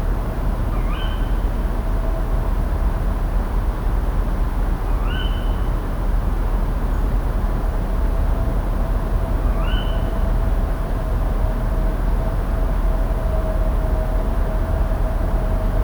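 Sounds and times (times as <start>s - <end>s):
constant low rumbling background noise: 0.0s - 15.8s
tawny owl Strix aluco calling: 0.7s - 1.4s, 5.0s - 5.5s, 9.5s - 10.1s.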